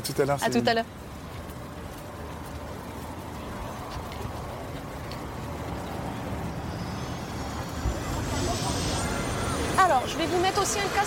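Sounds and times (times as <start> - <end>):
speech: 0.0 - 1.0, 10.1 - 11.0
helicopter high turbine whine: 5.2 - 11.0
helicopter engine and rotor carrying a patient to hospital in Chartres: 6.5 - 11.0.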